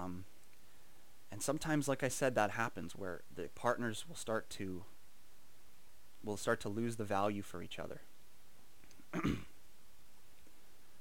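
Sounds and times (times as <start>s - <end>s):
speech: 1.4s - 4.9s, 6.2s - 8.1s, 9.1s - 9.5s
throat clearing from a throat dry with sawdust: 9.1s - 9.6s.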